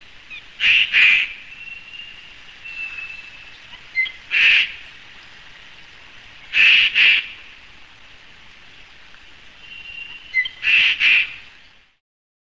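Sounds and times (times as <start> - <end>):
rook giving harsh grating caws: 0.6 - 5.0, 6.5 - 7.6, 9.6 - 11.4
faint thin whistles: 9.6 - 10.6.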